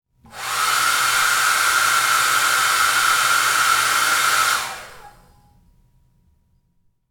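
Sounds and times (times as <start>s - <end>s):
hair blow dryer blowing: 0.3s - 5.4s.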